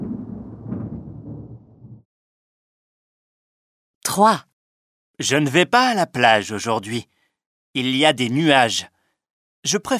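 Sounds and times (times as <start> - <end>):
thunder rumbling during a storm: 0.0 - 2.0
speech: 4.2 - 4.5, 5.2 - 8.9, 9.6 - 9.9.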